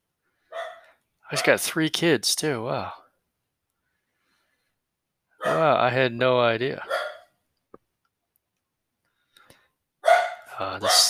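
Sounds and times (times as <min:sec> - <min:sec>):
dog barking: 0:00.5 - 0:01.5, 0:05.4 - 0:05.7, 0:06.8 - 0:07.4, 0:10.0 - 0:11.0
speech: 0:01.3 - 0:03.0, 0:05.5 - 0:06.9, 0:10.6 - 0:11.0.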